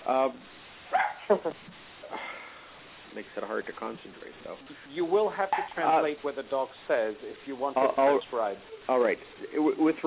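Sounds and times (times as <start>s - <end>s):
speech: 0.1s - 1.8s, 3.1s - 10.0s
dog barking in the background: 0.9s - 1.3s.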